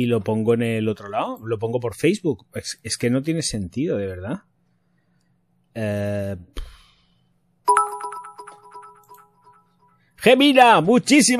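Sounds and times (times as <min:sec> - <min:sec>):
speech: 0:00.0 - 0:04.5, 0:05.8 - 0:06.7, 0:10.2 - 0:11.3
bright electronic livestream donation alert chime: 0:07.7 - 0:10.0.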